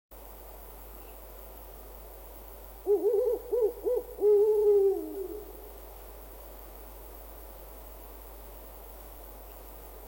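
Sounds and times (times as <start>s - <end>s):
distant owls hooting: 2.8s - 5.8s.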